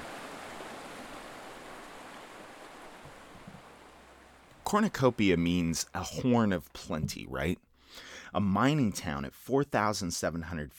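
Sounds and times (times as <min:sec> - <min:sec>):
lively mountain stream rushing and burbling: 0:00.0 - 0:07.1
faint low thumps: 0:03.0 - 0:07.7
speech: 0:04.7 - 0:10.7.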